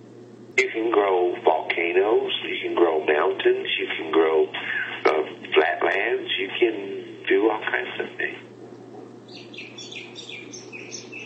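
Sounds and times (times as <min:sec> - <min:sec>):
low hum: 0:00.0 - 0:11.2
speech: 0:00.6 - 0:04.8, 0:05.5 - 0:08.5
bird singing chirps and trills: 0:08.9 - 0:11.2.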